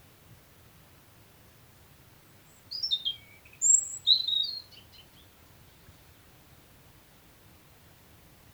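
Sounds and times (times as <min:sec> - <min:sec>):
European robin Erithacus rubecula singing: 0:02.7 - 0:04.8.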